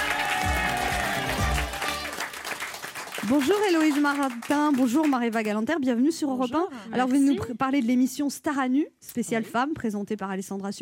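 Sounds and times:
studio audience applause welcoming two guests: 0.0 - 5.4
speech: 3.3 - 10.7.

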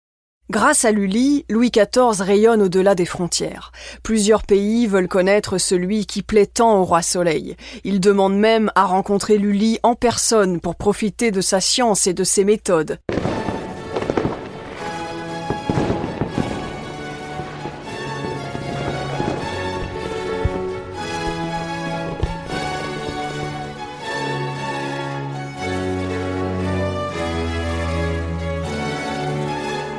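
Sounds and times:
speech: 0.5 - 13.3
fireworks crackling and banging: 13.1 - 24.2
steady orchestral music: 13.1 - 29.9.

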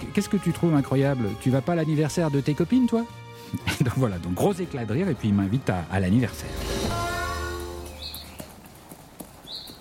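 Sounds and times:
speech: 0.2 - 6.7
horse hooves clip-clopping: 7.9 - 9.7.

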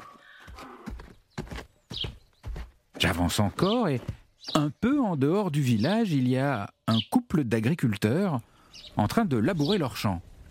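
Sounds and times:
donkey hooves clip-clopping in a village street: 0.0 - 4.8
speech: 3.0 - 10.3.

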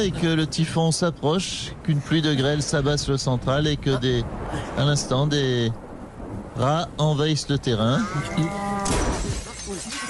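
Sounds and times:
speech: 0.0 - 5.8, 6.6 - 9.0
brown cow mooing: 8.0 - 9.0
crashing clatter: 8.8 - 10.0.

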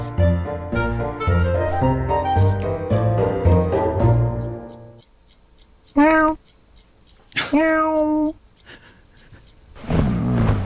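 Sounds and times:
gentle music: 0.0 - 5.1
steady clock ticking: 3.8 - 10.6
cartoon cat meowing insistently: 6.0 - 6.4, 7.5 - 8.4
burst of rustling noise: 9.8 - 10.6.

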